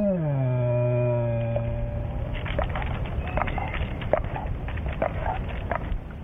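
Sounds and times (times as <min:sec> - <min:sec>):
frightened black bear moaning in a tree: 0:00.0 - 0:02.3
rustling: 0:02.0 - 0:06.2.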